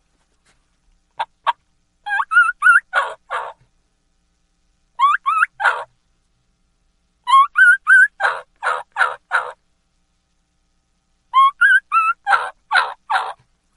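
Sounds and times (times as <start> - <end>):
jake whistle turkey call imitating a lost young gobbler: 1.2 - 3.6, 5.0 - 5.9, 7.3 - 9.6, 11.3 - 13.4.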